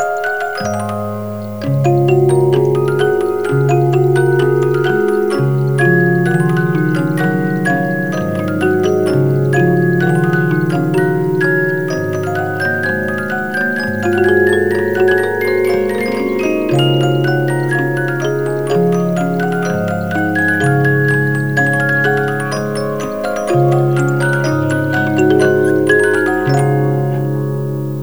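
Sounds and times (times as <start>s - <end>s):
symphony movement: 0.1s - 28.0s.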